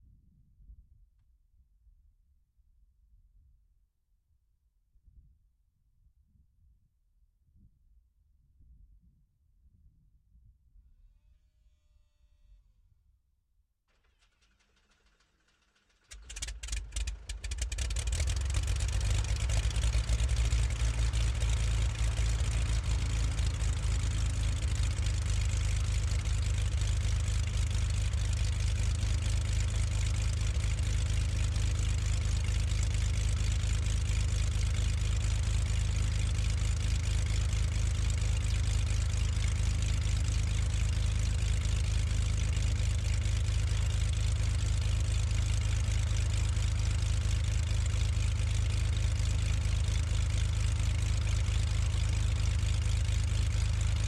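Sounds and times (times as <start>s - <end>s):
1969 twin-engine aircraft right engine starting and idling stationary, onboard: 13.9s - 54.0s.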